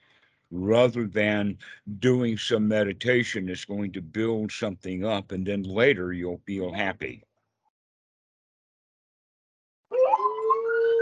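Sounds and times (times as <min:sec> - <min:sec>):
speech: 0:00.5 - 0:07.3
puppy howling: 0:09.9 - 0:11.0.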